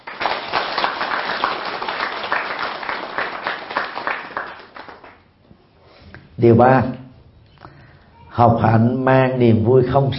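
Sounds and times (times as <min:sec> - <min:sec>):
audience applause: 0:00.0 - 0:05.2
speech: 0:06.4 - 0:07.0, 0:08.4 - 0:10.1.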